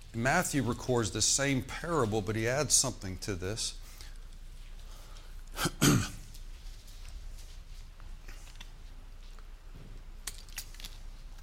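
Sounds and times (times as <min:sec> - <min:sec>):
speech: 0:00.2 - 0:03.8, 0:05.6 - 0:06.2
person coughing: 0:05.5 - 0:06.2
throat clearing: 0:05.5 - 0:06.2.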